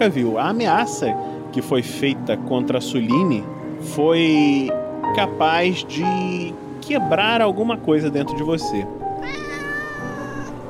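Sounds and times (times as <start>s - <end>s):
speech: 0.0s - 9.4s
cat meowing: 9.2s - 10.6s.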